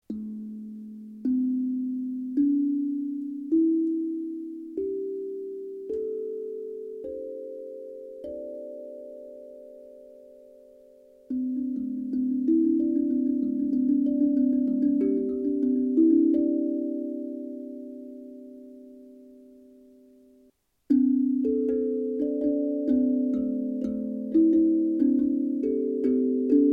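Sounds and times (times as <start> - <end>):
hapi drum in D minor: 0.0 - 5.1, 11.3 - 18.8, 20.9 - 26.7.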